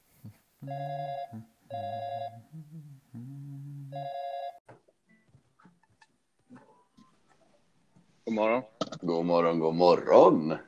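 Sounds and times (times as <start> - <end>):
speech: 0.6 - 2.1, 8.4 - 10.6
outgoing phone call electronic ring tones: 0.6 - 2.4, 3.9 - 4.6.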